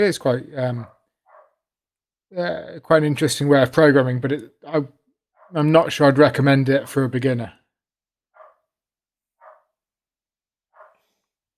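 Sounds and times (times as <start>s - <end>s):
speech: 0.0s - 1.0s, 2.3s - 7.6s
dog barking: 1.3s - 1.6s, 8.4s - 8.6s, 9.4s - 9.7s, 10.8s - 11.0s.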